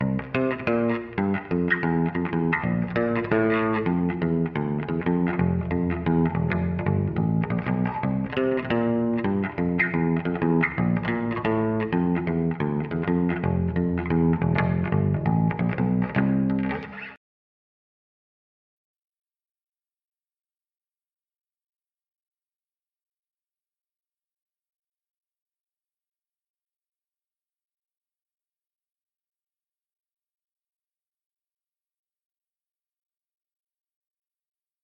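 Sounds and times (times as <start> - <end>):
bass with chorus effect: 0.0 - 17.2.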